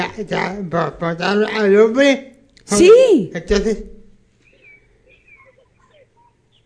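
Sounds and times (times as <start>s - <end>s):
speech: 0.2s - 3.9s
small bird chirping: 4.4s - 6.6s.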